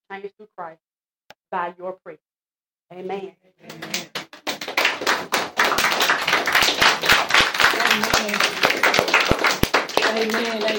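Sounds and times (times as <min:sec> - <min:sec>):
speech: 0:00.2 - 0:00.9, 0:01.5 - 0:02.3, 0:02.9 - 0:04.2, 0:07.7 - 0:10.7
audience clapping: 0:03.6 - 0:10.7.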